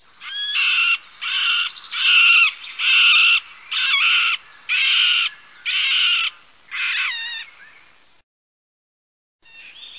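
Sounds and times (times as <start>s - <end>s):
middle spotted woodpecker birdsound: 0.2s - 7.9s.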